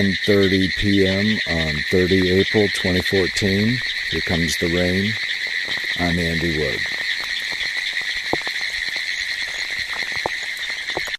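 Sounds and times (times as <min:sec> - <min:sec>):
speech: 0:00.0 - 0:07.0
Pine Woods Treefrog calling in a rapid high-pitched ticking trill: 0:00.0 - 0:11.1.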